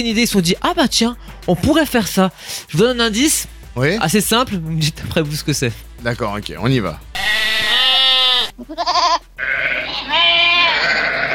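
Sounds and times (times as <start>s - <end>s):
speech: 0.0s - 7.1s, 8.6s - 11.3s
flock of sheep bleating at the Pompeii archaeological site: 7.2s - 11.3s.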